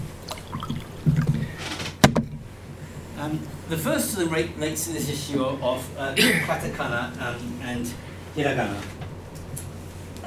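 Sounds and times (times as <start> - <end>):
water pouring into a glass: 0.2 - 1.6
speech: 3.3 - 9.0.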